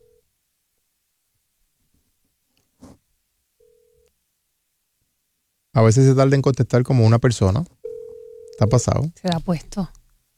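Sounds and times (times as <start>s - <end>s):
speech: 5.8s - 7.8s, 8.6s - 10.0s
steady ringback tone of an unanswered outgoing phone call: 7.8s - 9.1s.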